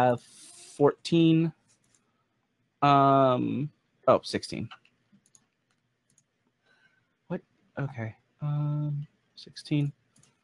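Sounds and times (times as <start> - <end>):
speech: 0.0 - 1.6, 2.8 - 4.8, 7.3 - 10.0
typing on a computer keyboard: 4.7 - 6.3, 10.1 - 10.4.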